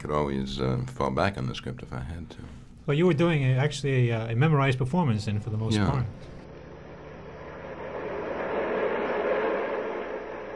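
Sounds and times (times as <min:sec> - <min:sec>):
speech: 0:00.0 - 0:06.4
subway train riding on rails: 0:07.7 - 0:10.5.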